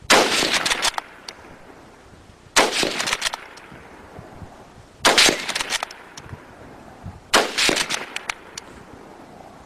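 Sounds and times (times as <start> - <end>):
World War 2 rifle: 0.0 - 1.5, 2.6 - 3.9, 5.0 - 6.5, 7.3 - 8.8.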